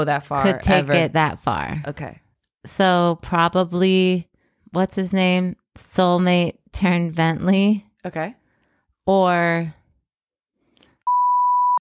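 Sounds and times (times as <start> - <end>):
speech: 0.0 - 8.4, 9.1 - 9.8
loud electronic beep: 11.1 - 11.7.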